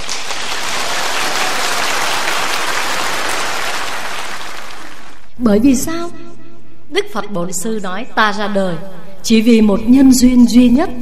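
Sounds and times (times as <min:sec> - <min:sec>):
large crowd applauding: 0:00.0 - 0:05.4
speech: 0:05.4 - 0:06.1, 0:07.0 - 0:10.9.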